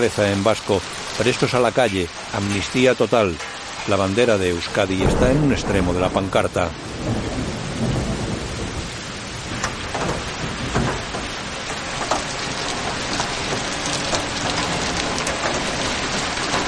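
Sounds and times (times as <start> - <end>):
speech: 0.0 - 7.2
rain falling on a village in the Basque Country: 0.0 - 16.6
low rumbling: 3.6 - 16.6.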